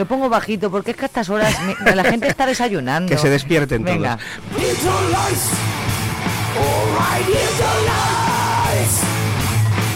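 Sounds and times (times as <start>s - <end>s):
speech: 0.0s - 5.8s, 6.6s - 9.1s
laughter: 1.4s - 2.7s
heavy metal music with distorted guitars: 4.3s - 9.9s
harsh shouted vocals: 4.5s - 5.7s, 6.4s - 9.2s.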